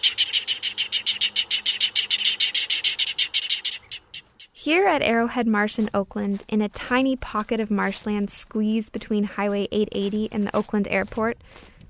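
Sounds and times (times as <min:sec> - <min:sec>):
speech: 0:00.0 - 0:00.4, 0:04.6 - 0:11.7
California clapper rail giving a rattling clapping call: 0:00.0 - 0:04.6.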